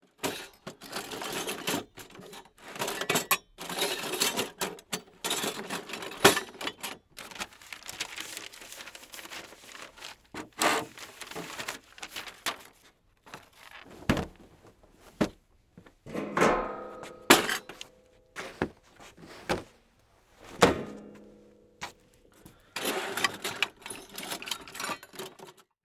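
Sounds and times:
person rummaging through stuff: 0.3 - 25.6.

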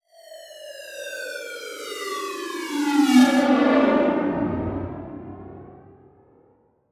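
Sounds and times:
descending title transition production element: 2.7 - 6.3.

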